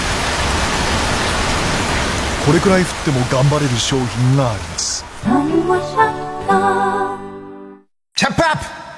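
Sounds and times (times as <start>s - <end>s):
heavy rain drumming on surfaces: 0.0s - 6.1s
speech: 2.5s - 7.0s, 8.2s - 8.8s.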